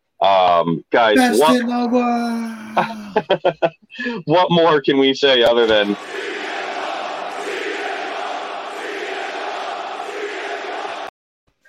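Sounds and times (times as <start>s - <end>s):
speech: 0.2s - 6.4s
huge arena crowd roaring and cheering: 1.2s - 3.1s, 5.6s - 11.1s
laughter: 1.2s - 3.8s.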